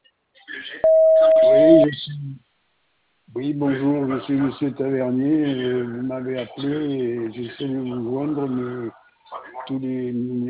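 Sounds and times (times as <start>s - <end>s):
speech: 0.6s - 2.5s, 3.3s - 9.0s, 9.7s - 10.4s
steady loud electronic voicemail beep: 0.8s - 2.0s.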